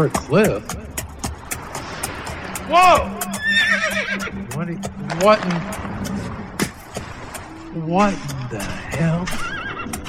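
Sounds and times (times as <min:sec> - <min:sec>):
speech: 0:00.0 - 0:00.9, 0:02.7 - 0:06.2, 0:07.7 - 0:09.6
horse neighing: 0:02.7 - 0:04.4, 0:08.6 - 0:10.0.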